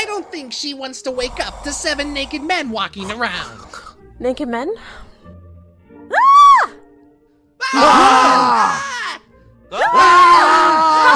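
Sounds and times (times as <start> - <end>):
speech: 0.2 - 5.1, 7.7 - 8.7
many voices screaming together: 7.6 - 11.1.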